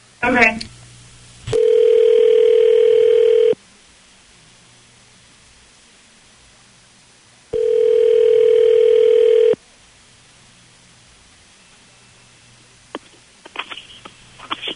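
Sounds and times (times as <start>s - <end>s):
electronic ringback tone: 1.5s - 3.6s, 7.6s - 9.6s
phone dialing: 1.5s - 3.6s, 7.6s - 9.6s.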